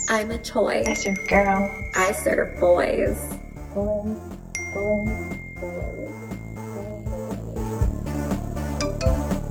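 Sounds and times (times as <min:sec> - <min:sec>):
busy musical backing with a low pulsing beat: 0:00.0 - 0:09.4
speech: 0:00.1 - 0:06.3
single bright ding like a phone notification tone: 0:00.8 - 0:03.7, 0:04.6 - 0:07.1.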